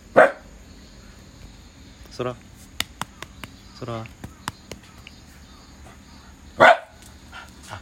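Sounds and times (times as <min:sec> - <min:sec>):
quiet hum: 0:00.0 - 0:07.7
dog barking to warn off a passerby: 0:00.1 - 0:00.5, 0:06.6 - 0:07.0
speech: 0:02.2 - 0:02.5, 0:03.8 - 0:04.2.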